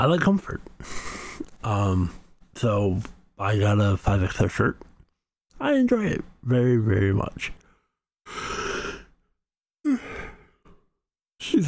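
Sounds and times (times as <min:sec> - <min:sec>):
speech: 0:00.0 - 0:04.9, 0:05.6 - 0:07.6
breathy yawn with low voiced groan: 0:09.8 - 0:10.4.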